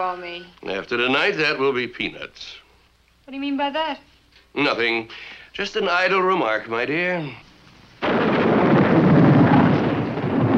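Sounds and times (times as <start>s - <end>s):
speech: 0.0s - 2.6s, 3.3s - 7.4s
thunder from a dry summer heat storm: 8.0s - 10.5s.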